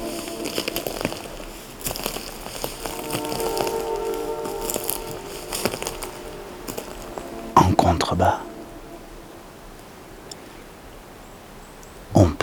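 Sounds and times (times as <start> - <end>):
footsteps crunching over twigs and dry leaves on a forest floor: 0.0 - 9.2
faint birdsong: 0.0 - 12.4
outdoor hiss: 0.0 - 12.4.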